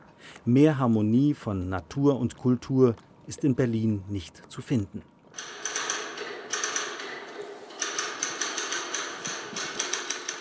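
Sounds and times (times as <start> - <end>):
speech: 0.4 - 5.1
mechanical typewriter clacking: 5.4 - 10.3.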